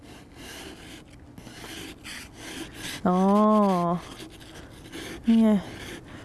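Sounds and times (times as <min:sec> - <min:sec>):
scraper scraping a hard deposit off a car: 0:00.0 - 0:06.2
speech: 0:03.0 - 0:04.2, 0:05.3 - 0:05.8.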